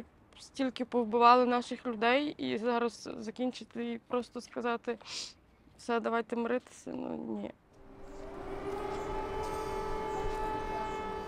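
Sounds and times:
speech: 0.4 - 7.6
air raid warning sirens wailing: 7.8 - 11.2.

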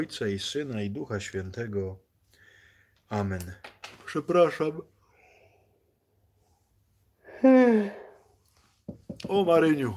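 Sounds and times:
speech: 0.0 - 2.0, 3.1 - 4.9, 7.4 - 8.0, 8.9 - 9.9
person yawning: 7.3 - 8.2.

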